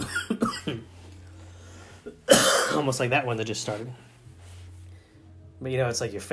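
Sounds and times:
harsh coughs: 0:00.0 - 0:00.9, 0:02.2 - 0:02.9
low steady hum: 0:00.0 - 0:06.3
speech: 0:02.8 - 0:04.1, 0:05.6 - 0:06.3.

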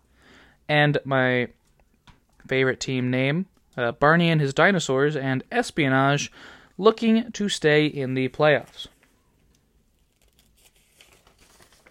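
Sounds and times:
speech: 0:00.7 - 0:01.6, 0:02.4 - 0:08.9
paper page being flipped over: 0:10.0 - 0:11.9.

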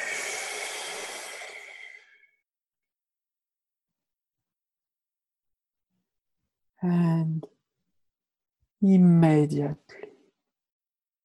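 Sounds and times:
person drawing in a long breath during a calming meditation exercise: 0:00.0 - 0:02.3
speech: 0:06.8 - 0:07.5, 0:08.8 - 0:10.0.

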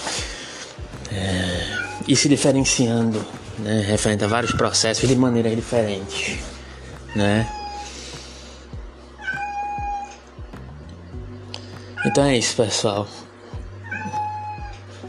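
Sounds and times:
speech: 0:01.1 - 0:01.5, 0:02.1 - 0:06.5, 0:07.1 - 0:07.6, 0:12.2 - 0:13.2
cat meowing: 0:01.6 - 0:02.1, 0:04.2 - 0:04.8, 0:07.1 - 0:07.9, 0:09.2 - 0:10.2, 0:12.0 - 0:12.2, 0:13.8 - 0:14.8.

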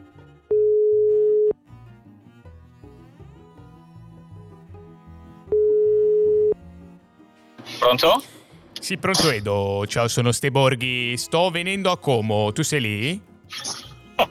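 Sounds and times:
music: 0:00.0 - 0:14.3
telephone ring tones while a call is being placed: 0:00.5 - 0:01.5, 0:05.5 - 0:06.6
speech: 0:07.9 - 0:13.7.

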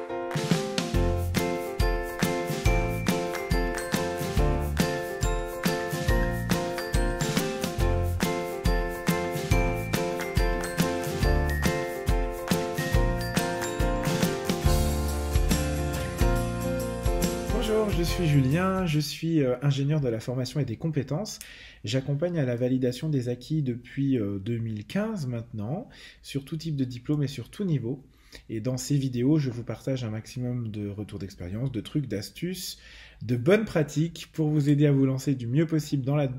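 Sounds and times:
steady beat of upbeat theme: 0:00.3 - 0:18.9
bright tinkling podcast opening theme jingle with chime-like notes: 0:01.1 - 0:18.8
speech: 0:18.0 - 0:36.3.

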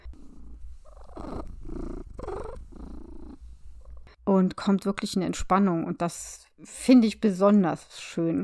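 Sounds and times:
domestic cat purring: 0:00.0 - 0:04.2
speech: 0:04.3 - 0:08.4.

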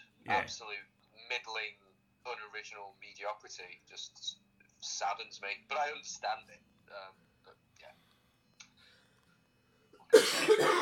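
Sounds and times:
speech: 0:00.3 - 0:07.6
person coughing: 0:10.1 - 0:10.8.

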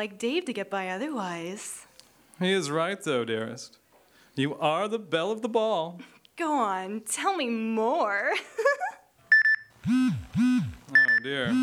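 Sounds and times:
speech: 0:00.0 - 0:03.8, 0:04.4 - 0:08.9, 0:09.8 - 0:11.6
cell phone beeping: 0:09.3 - 0:11.6.

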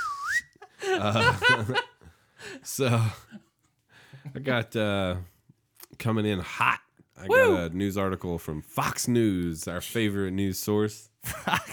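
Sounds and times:
person whistling a glide imitating a slide whistle: 0:00.0 - 0:00.6
chuckling, laughing voices: 0:00.6 - 0:03.3
speech: 0:01.0 - 0:01.9, 0:02.6 - 0:03.3, 0:04.3 - 0:05.3, 0:06.0 - 0:11.7.

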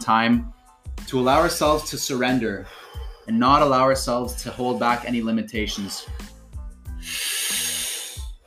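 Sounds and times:
speech: 0:00.0 - 0:06.3
person breathing in deeply during a guided breathing exercise: 0:06.0 - 0:08.3.

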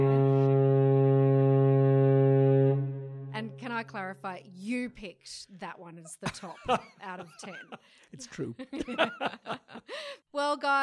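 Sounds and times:
foghorn blast sound effect: 0:00.0 - 0:03.5
speech: 0:03.8 - 0:10.8
laughter: 0:06.2 - 0:10.2.

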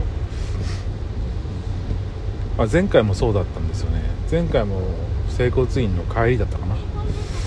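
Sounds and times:
road noise inside a moving car: 0:00.0 - 0:07.4
brief hiss: 0:00.3 - 0:00.9, 0:07.0 - 0:07.4
speech: 0:02.6 - 0:06.9.

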